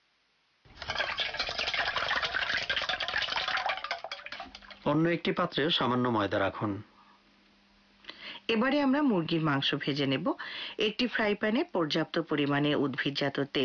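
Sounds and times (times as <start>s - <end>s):
two eggs being beaten in a bowl for a chicken coating: 0.7s - 5.2s
speech: 4.9s - 6.9s, 8.5s - 13.6s.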